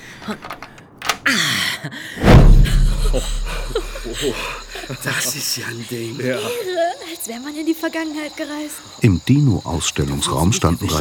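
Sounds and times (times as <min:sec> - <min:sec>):
museum door lock clicking: 0:00.0 - 0:01.4, 0:02.2 - 0:04.1
speech: 0:00.2 - 0:00.6, 0:01.3 - 0:10.9
heavy thud of a museum door opening: 0:00.2 - 0:01.3, 0:02.2 - 0:04.9
low rumbling swell: 0:02.2 - 0:04.8.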